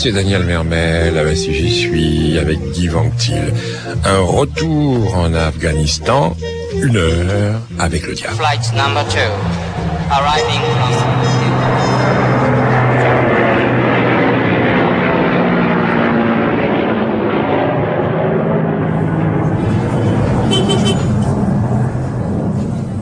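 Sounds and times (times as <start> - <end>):
speech: 0.0 - 11.4
busy street traffic: 0.0 - 16.0, 18.8 - 23.0
airplane roaring overhead: 0.0 - 23.0.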